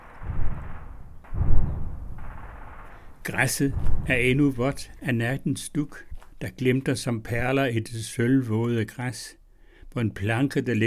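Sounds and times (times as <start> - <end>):
distant live-ammunition gunfire booms: 0.0 - 5.1
speech: 3.2 - 9.4, 10.0 - 10.8.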